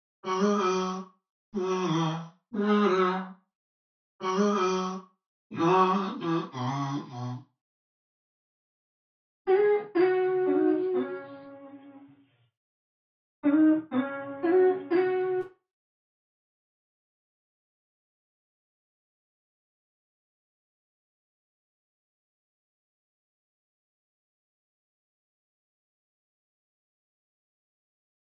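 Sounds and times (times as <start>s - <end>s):
vocal loop in C sharp minor: 0.2s - 1.0s, 1.6s - 3.3s, 4.2s - 7.4s, 9.5s - 12.2s, 13.4s - 15.5s.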